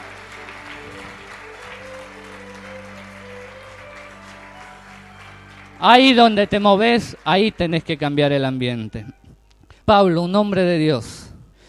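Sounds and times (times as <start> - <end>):
audience applause at a church service: 0.0 - 8.8
speech: 5.8 - 9.2, 9.9 - 11.3.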